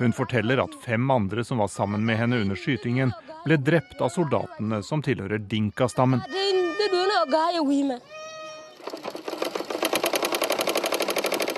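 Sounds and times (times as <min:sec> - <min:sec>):
speech: 0:00.0 - 0:08.1
tailor's sewing machine running in a refugee camp: 0:08.8 - 0:11.5.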